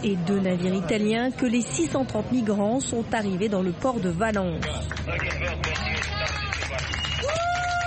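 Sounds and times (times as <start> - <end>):
speech: 0.0 - 7.5
crowd clapping at a port: 4.5 - 7.8
crowd cheering and calling at a port: 5.0 - 7.8.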